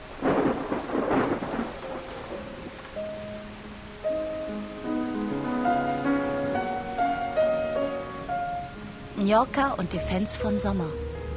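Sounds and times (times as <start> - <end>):
loud burst of thunder rumbling: 0.0 - 11.3
steady rain: 0.0 - 11.3
gentle melody of sustained notes: 1.3 - 11.3
speech: 9.3 - 11.0.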